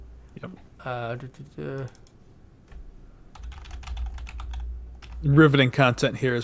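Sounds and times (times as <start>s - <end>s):
speech: 0.4s - 2.1s, 5.2s - 6.4s
typing on a computer keyboard: 1.8s - 2.2s, 3.3s - 5.2s.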